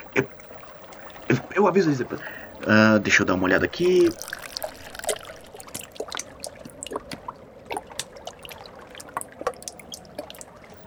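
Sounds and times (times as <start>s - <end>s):
water trickling down in a hole: 0.0s - 10.8s
speech: 0.2s - 0.4s, 1.3s - 4.3s.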